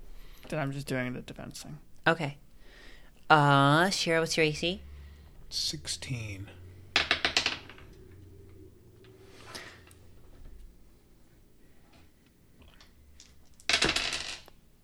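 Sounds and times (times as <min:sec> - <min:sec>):
speech: 0:00.5 - 0:02.4, 0:03.3 - 0:04.9, 0:05.5 - 0:06.6
many dice clattering across a table: 0:13.6 - 0:14.5.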